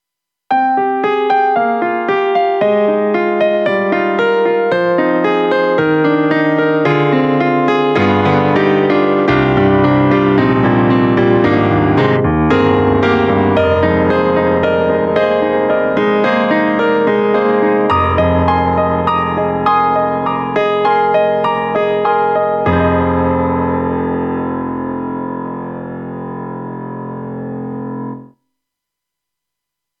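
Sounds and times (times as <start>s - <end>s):
KORG M3 synthesizer upright piano sample: 0.5s - 28.3s.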